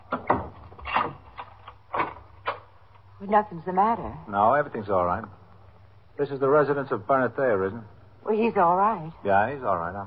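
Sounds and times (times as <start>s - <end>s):
apartment door being unlatched and opened: 0.1s - 2.6s
speech: 3.2s - 5.4s, 6.2s - 10.0s.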